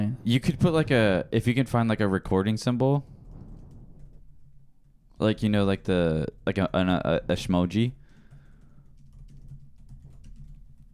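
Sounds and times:
constant low electrical hum: 0.0 - 10.9
speech: 0.1 - 3.1, 5.2 - 8.0
typing on a computer keyboard: 7.9 - 10.9.

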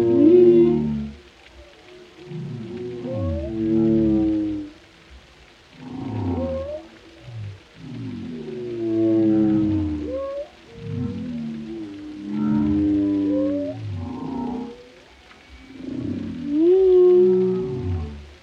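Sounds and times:
whale song of low moans and upward-curling squeals: 0.0 - 18.4.

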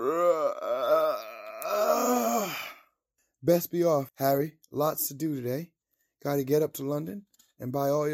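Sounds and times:
male narrator yawning loudly with groaning pitch swoops: 0.0 - 2.9
speech: 3.4 - 8.1.

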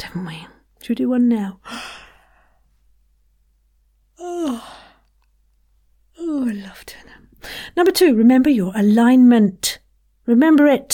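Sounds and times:
speech: 0.0 - 1.7, 7.9 - 10.9
faint breath: 1.6 - 2.8, 7.4 - 7.8
loud deliberate yawn: 4.2 - 5.1.

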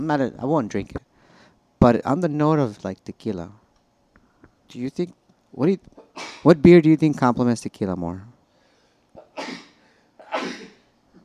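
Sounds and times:
speech: 0.0 - 1.1, 1.8 - 3.6, 4.7 - 8.3
person sneezing: 6.0 - 6.5, 9.2 - 10.9.

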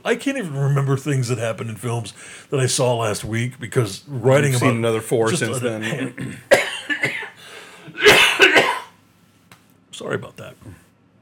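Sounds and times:
speech: 0.0 - 6.6, 10.0 - 10.9
person coughing into the microphone: 5.9 - 9.0.

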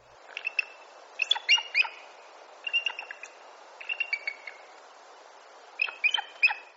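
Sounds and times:
bald eagle chittering calls: 0.3 - 4.7, 5.8 - 6.7.

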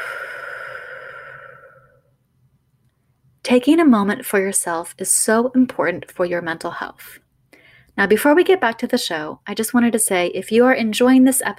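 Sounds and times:
deep breath slowly exhaled during a guided relaxation exercise: 0.0 - 2.1
speech: 3.5 - 7.2, 8.0 - 11.5.

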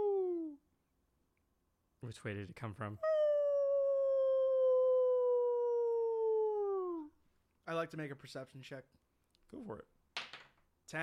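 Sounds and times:
speech: 2.0 - 3.2, 7.7 - 10.0, 10.9 - 11.0
wolf howling: 3.0 - 7.1.

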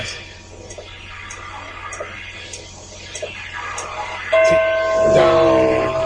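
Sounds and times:
clock bell striking with long humming resonance: 4.3 - 6.0.

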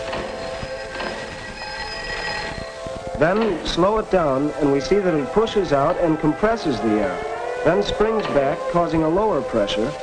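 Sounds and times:
struck bell ringing: 0.3 - 2.8
speech: 3.2 - 10.0.

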